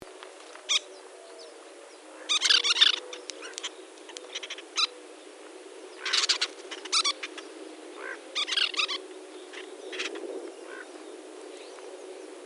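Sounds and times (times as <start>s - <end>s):
Western Kingbird Tyrannus verticalis calling: 2.2s - 5.1s, 5.9s - 11.0s.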